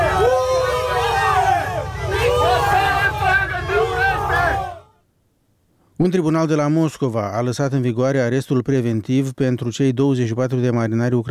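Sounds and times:
large crowd of protesters booing and shouting: 0.0s - 4.9s
speech: 6.0s - 11.3s.

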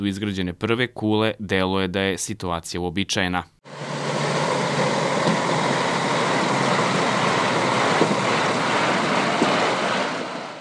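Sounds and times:
speech: 0.0s - 3.8s
heavy trucks and excavators rumbling at a fenced construction site in Belgrade Serbia: 3.6s - 10.5s.

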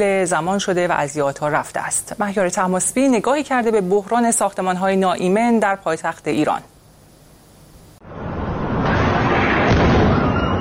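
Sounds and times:
speech: 0.0s - 6.7s
loud continuous roaring rumble of a surgical center fire: 8.0s - 10.5s
oxygen and helium gas cylinders exploding during a surgical center fire in Tehran: 8.0s - 10.5s.

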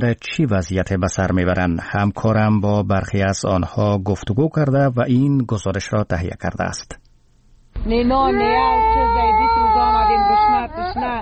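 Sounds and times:
speech: 0.0s - 7.0s, 7.8s - 11.2s
young child crying loudly from hunger: 8.2s - 11.2s.

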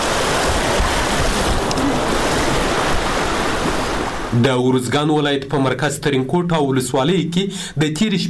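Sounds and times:
floodwater rushing after heavy overnight rains in Uruzgan province Afghanistan: 0.0s - 4.6s
speech: 4.4s - 8.2s.

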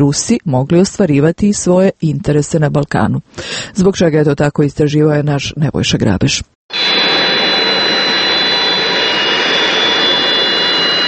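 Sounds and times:
speech: 0.0s - 6.5s
Beriev Be-200 jet aircraft landing at Niš airport in Serbia: 6.7s - 11.0s
thin high whine of jet engine: 6.7s - 11.0s.

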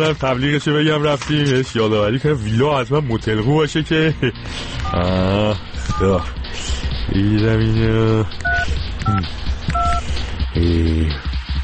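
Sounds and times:
speech: 0.0s - 8.4s, 9.0s - 9.5s, 10.6s - 11.3s
two-tone telephone line beeps: 5.9s - 6.4s, 8.4s - 10.0s.

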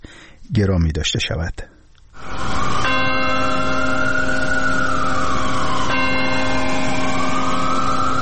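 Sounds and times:
speech: 0.5s - 1.7s
large church bell tolling: 2.2s - 8.2s
siren wailing: 2.2s - 8.2s.

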